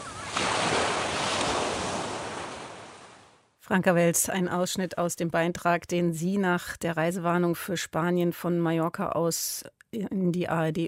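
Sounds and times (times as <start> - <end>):
ocean waves washing onto the beach at Playa de Palma in Mallorca: 0.0 - 3.5
speech: 3.7 - 10.8.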